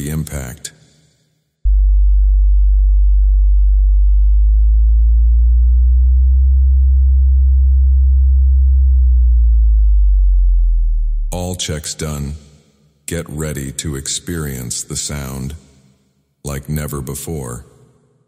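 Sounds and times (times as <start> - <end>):
speech: 0.0 - 0.7, 11.3 - 12.5, 13.1 - 15.7, 16.4 - 17.7
deep low-frequency sine test tone: 1.6 - 11.4.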